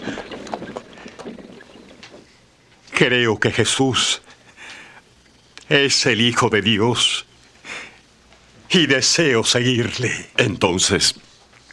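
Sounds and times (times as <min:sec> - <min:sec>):
horses' hooves clip-clopping as they halt: 0:00.0 - 0:02.3
speech: 0:03.0 - 0:04.2, 0:05.7 - 0:07.3, 0:08.7 - 0:11.2.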